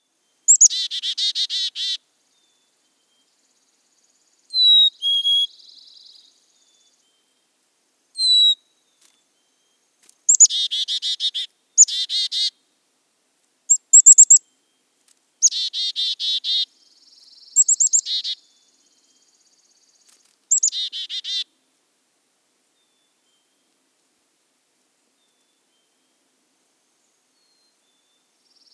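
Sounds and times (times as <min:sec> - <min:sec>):
Black-capped Chickadee calling: 0:00.5 - 0:02.0, 0:04.5 - 0:06.2, 0:08.2 - 0:08.6, 0:10.3 - 0:12.6, 0:13.7 - 0:14.4, 0:15.4 - 0:16.7, 0:17.4 - 0:18.5, 0:20.5 - 0:21.5.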